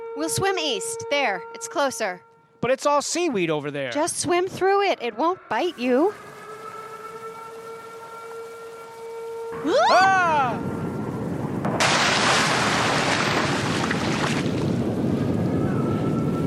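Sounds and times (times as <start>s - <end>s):
tornado siren wailing: 0.0s - 2.6s, 4.1s - 16.4s
speech: 0.2s - 6.3s, 9.6s - 10.7s
loud gust of wind over open water during a lightning storm: 9.6s - 16.4s
waves washing: 11.8s - 14.9s.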